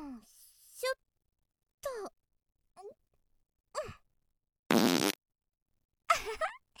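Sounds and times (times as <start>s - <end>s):
speech: 0.8s - 1.0s
loud buzzy fart: 4.7s - 5.2s.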